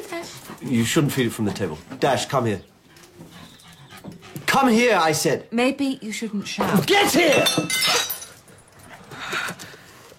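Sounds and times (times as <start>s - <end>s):
speech: 0.2s - 2.7s, 4.6s - 8.0s
clinks and rattles of cup pieces settling: 7.0s - 8.8s
thrown cup smashing: 7.2s - 8.4s.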